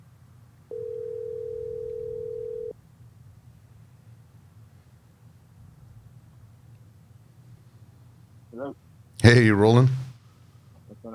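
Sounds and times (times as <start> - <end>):
low hum: 0.0 - 11.1
electronic telephone ringback tone: 0.7 - 2.8
speech: 8.6 - 10.0.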